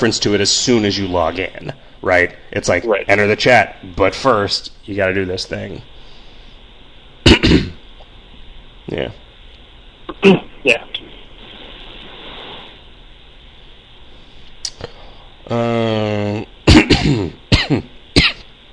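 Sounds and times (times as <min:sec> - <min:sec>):
speech: 0:00.0 - 0:05.9, 0:07.4 - 0:07.7, 0:08.9 - 0:09.2, 0:10.1 - 0:11.0, 0:15.5 - 0:17.9
person coughing over a call-quality line: 0:07.3 - 0:07.8, 0:16.7 - 0:18.5
person groaning: 0:15.5 - 0:16.5.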